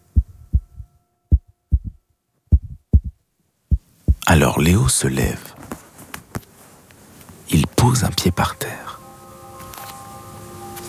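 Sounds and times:
heartbeat thumping in lub-dub pairs: 0.0 - 4.3
speech: 4.3 - 5.6, 7.8 - 9.0.

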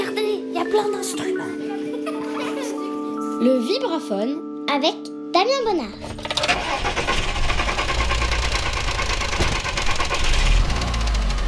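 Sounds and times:
speech: 0.7 - 1.7, 3.4 - 7.2
laughter: 1.3 - 3.3
car engine running with irregular rattling knock: 6.3 - 11.4.

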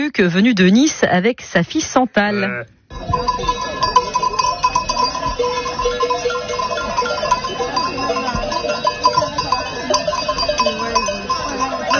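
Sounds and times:
speech: 0.0 - 3.6
many sheep bells clanking and jingling: 2.9 - 11.9.

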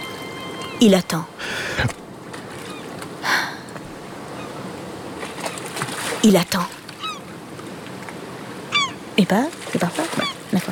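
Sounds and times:
faint higher tones: 0.0 - 1.4
boat moving on water: 0.0 - 10.6
speech: 0.8 - 2.0, 6.2 - 6.8, 9.2 - 10.6.

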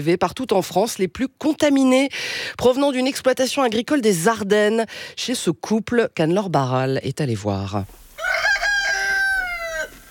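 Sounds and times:
speech: 0.0 - 8.0
rooster crowing on a farm in the Ardennes, France: 8.2 - 10.0.

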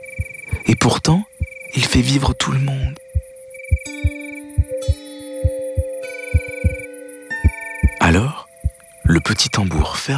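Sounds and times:
heartbeat thumps: 0.0 - 2.0, 2.8 - 9.3
speech: 0.8 - 3.0, 9.1 - 10.1
sustained chiming musical tones: 2.0 - 9.4.

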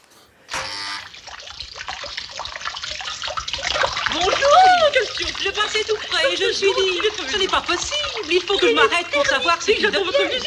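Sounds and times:
water jet spraying from a fish-shaped fountain: 0.5 - 10.4
laughter: 4.1 - 10.4
speech: 5.2 - 10.4.

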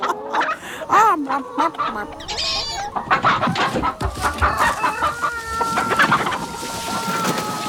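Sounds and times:
several hens clucking: 0.0 - 7.6
rooster crowing: 4.0 - 7.6.

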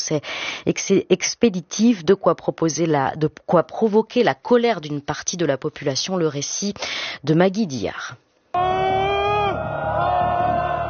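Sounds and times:
speech: 0.1 - 8.9
crowd of protesters shouting together in a square: 8.6 - 10.8
dense roar of many protesters' voices in a square: 8.6 - 10.8.

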